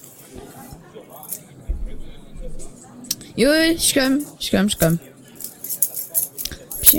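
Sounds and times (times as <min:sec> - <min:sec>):
speech: 0:03.4 - 0:05.1
keys jangling and clinking: 0:05.4 - 0:06.9.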